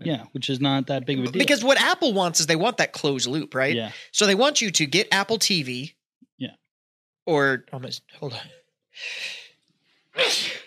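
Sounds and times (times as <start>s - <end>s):
speech: 0.0s - 6.6s, 7.2s - 9.4s, 10.2s - 10.6s
loud sneezes: 10.2s - 10.6s.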